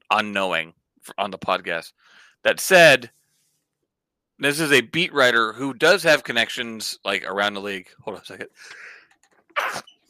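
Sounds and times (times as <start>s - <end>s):
speech: 0.1s - 3.2s, 4.4s - 8.9s, 9.6s - 10.0s
brief breathy inhale: 2.0s - 2.4s, 8.6s - 9.2s
sharp explosive sneeze: 9.6s - 10.0s.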